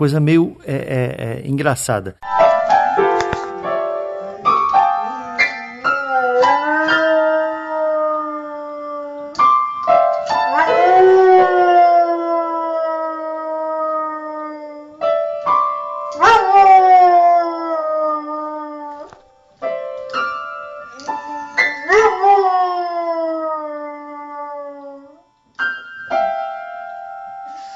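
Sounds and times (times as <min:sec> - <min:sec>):
speech: 0:00.0 - 0:02.4
piano notes struck irregularly by a dog: 0:02.2 - 0:13.0, 0:13.9 - 0:27.7
dog howling in long wavering sliding cries: 0:04.0 - 0:15.1, 0:16.2 - 0:19.2, 0:20.8 - 0:25.3.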